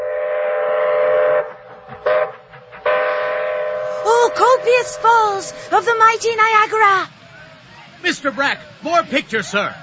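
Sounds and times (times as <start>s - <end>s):
train whistle: 0.0s - 5.7s
speech: 4.6s - 7.2s, 8.0s - 9.8s.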